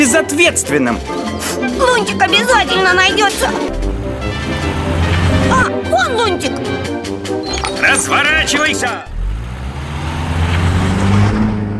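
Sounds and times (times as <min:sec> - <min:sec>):
speech: 0:00.2 - 0:03.9, 0:05.5 - 0:09.1
car engine humming and accelerating: 0:03.4 - 0:05.7, 0:09.0 - 0:11.7
road and wind noise from a moving car: 0:03.7 - 0:05.7, 0:09.1 - 0:11.7.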